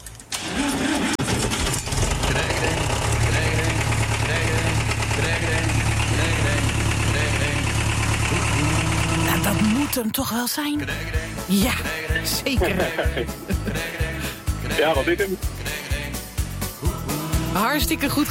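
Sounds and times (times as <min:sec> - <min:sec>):
tractor engine idling: 0:00.3 - 0:18.2
laughter: 0:02.2 - 0:09.7, 0:10.8 - 0:16.2
speech: 0:10.3 - 0:14.0, 0:14.8 - 0:15.6, 0:17.6 - 0:18.2.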